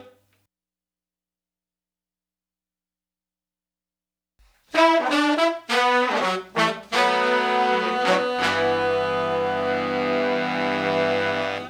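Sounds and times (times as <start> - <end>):
70s analog funk soul horn section: 4.7 - 11.6.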